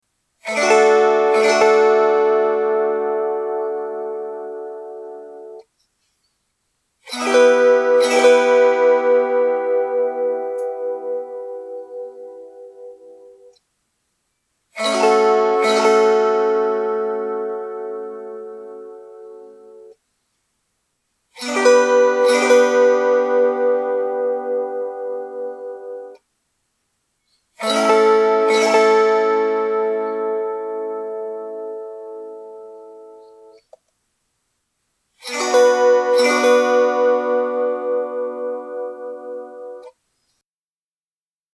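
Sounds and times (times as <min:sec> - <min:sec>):
kantele playing chords: 0:00.4 - 0:05.6, 0:07.1 - 0:13.6, 0:14.8 - 0:19.9, 0:21.4 - 0:26.2, 0:27.6 - 0:33.6, 0:35.2 - 0:39.9.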